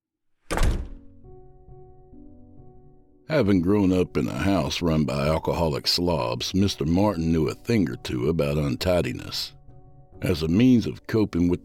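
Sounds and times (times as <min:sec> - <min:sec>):
classroom door opening with a heavy thunk: 0:00.5 - 0:01.1
speech: 0:03.3 - 0:09.6, 0:10.2 - 0:11.6.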